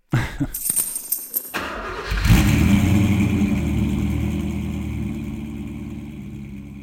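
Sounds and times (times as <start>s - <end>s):
yellow Peugeot 306 cabriolet engine cranking and revving: 1.6s - 6.8s.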